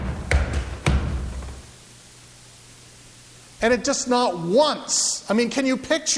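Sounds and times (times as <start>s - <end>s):
heavy pounding knocks on a door: 0.0s - 1.6s
speech: 3.6s - 6.1s.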